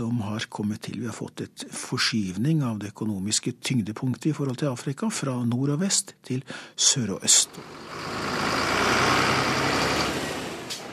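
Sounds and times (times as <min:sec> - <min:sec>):
speech: 0:00.0 - 0:10.0
heavy fully loaded truck rumbling past at a copper mine: 0:07.3 - 0:10.9.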